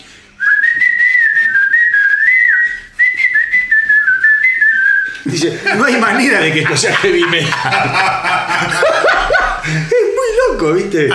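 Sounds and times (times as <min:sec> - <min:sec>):
person whistling a heavy metal song melody: 0:00.4 - 0:05.2
laughter: 0:05.2 - 0:10.7
speech: 0:05.3 - 0:11.1.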